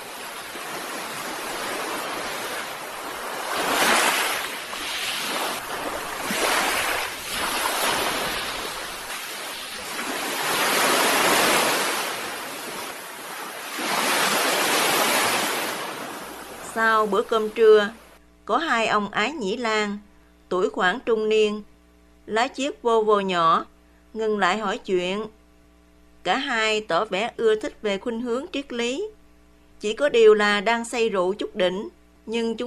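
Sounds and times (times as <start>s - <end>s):
ocean waves crashing against rocks: 0.0s - 16.8s
speech: 17.0s - 21.7s, 22.3s - 25.4s, 26.2s - 29.2s, 29.8s - 32.6s.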